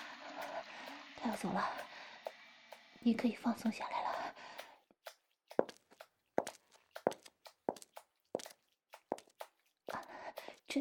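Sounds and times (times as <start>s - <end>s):
speech: 1.2s - 1.9s, 3.0s - 4.2s
crisp footsteps walking on a hard floor: 3.7s - 10.8s
scuffing shuffle of feet: 5.0s - 10.8s.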